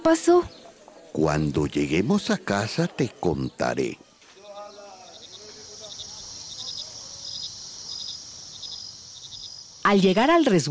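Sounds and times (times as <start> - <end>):
speech: 0.0 - 4.1, 9.9 - 10.7
murmur of voices: 0.0 - 7.4
crickets chirping at night: 0.1 - 10.7
constant high insect drone: 1.2 - 10.5.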